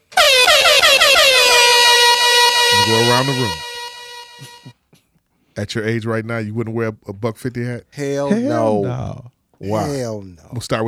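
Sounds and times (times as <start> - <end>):
air horn blasts: 0.1 - 4.8
speech: 3.2 - 3.6, 5.6 - 10.8.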